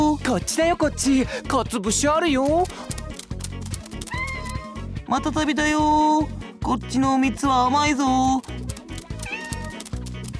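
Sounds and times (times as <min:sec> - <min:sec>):
speech: 0:00.3 - 0:03.0, 0:05.1 - 0:08.7
cat meowing: 0:09.2 - 0:09.8.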